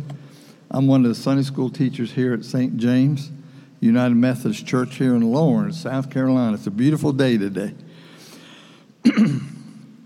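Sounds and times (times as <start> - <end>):
speech: 0.7 - 7.8, 9.0 - 9.5
harsh cough from allergies and drainage in a Methodist church Sunday school class: 9.0 - 9.9.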